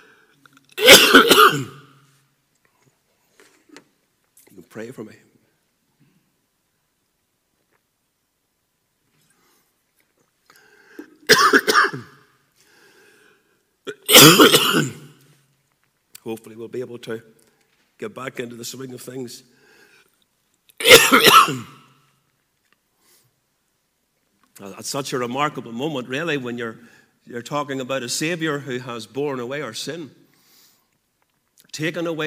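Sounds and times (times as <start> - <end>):
person coughing and clearing throat: 0.8 - 1.9, 11.0 - 12.2, 13.9 - 15.0, 20.8 - 21.8
speech: 4.8 - 5.3, 14.2 - 15.0, 16.3 - 17.4, 18.0 - 19.6, 21.1 - 21.8, 24.6 - 30.2, 31.8 - 32.2.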